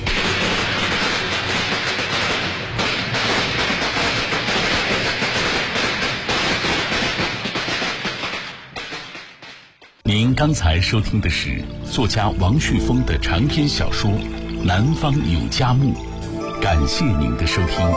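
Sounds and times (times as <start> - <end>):
long string of firecrackers thrown out of a house exploding: 0.0 - 10.0
speech: 10.4 - 17.9.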